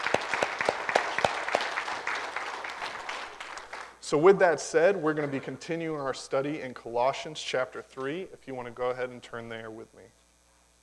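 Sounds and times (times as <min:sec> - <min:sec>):
small crowd applauding: 0:00.0 - 0:05.7
speech: 0:04.1 - 0:10.2.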